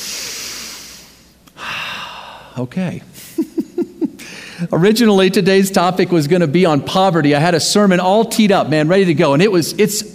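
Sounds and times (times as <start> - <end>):
group of people taking a deep breath during a sermon: 0.0 - 2.6, 4.2 - 4.7
speech: 2.6 - 3.8, 4.6 - 10.1
laughter: 3.2 - 4.4.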